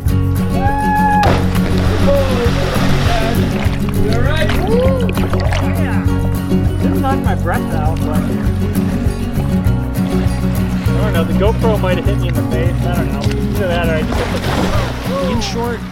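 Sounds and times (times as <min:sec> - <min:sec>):
body splashing heavily into river water: 0:00.6 - 0:06.0, 0:13.9 - 0:15.8
water churning and sloshing: 0:00.8 - 0:15.8
speech: 0:11.4 - 0:15.8.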